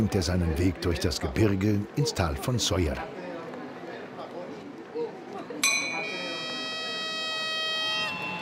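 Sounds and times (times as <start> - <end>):
speech: 0.0 - 3.2
train departure signal horn or whistle blast: 6.4 - 8.4.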